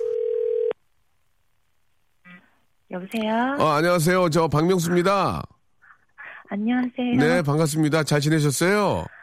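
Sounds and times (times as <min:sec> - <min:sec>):
telephone dial tone while placing a call: 0:00.0 - 0:00.8
speech: 0:02.9 - 0:05.5, 0:06.5 - 0:09.2.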